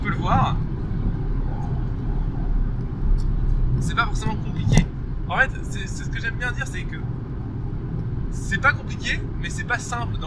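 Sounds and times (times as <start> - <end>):
road noise inside a moving car: 0.0 - 10.2
speech: 3.8 - 4.4, 5.3 - 7.2, 8.4 - 10.2.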